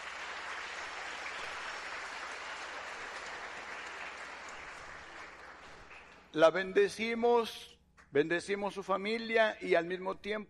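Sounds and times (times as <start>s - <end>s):
audience applauding: 0.0s - 6.3s
speech: 6.3s - 10.4s.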